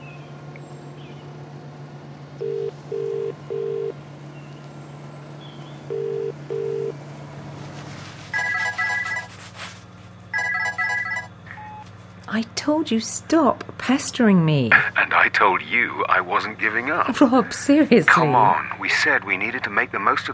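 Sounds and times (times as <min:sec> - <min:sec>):
low steady hum: 0:00.0 - 0:20.3
phone ringing tone pulsing in pairs: 0:02.4 - 0:04.0, 0:05.9 - 0:07.0, 0:08.3 - 0:09.4, 0:10.3 - 0:11.9
short electronic beeps of a phone being dialed: 0:08.4 - 0:09.3, 0:10.4 - 0:11.9
speech: 0:12.7 - 0:20.3.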